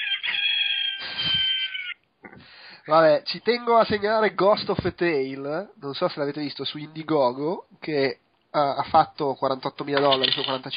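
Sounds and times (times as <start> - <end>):
tinny electronic rooster crow from a small toy: 0.0 - 2.0
speech: 2.9 - 10.7.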